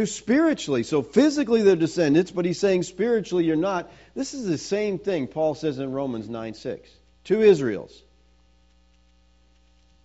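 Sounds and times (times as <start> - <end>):
speech: 0.0 - 8.0
electrical mains hum from a sound system: 0.0 - 10.0
faint static hiss: 0.0 - 10.0.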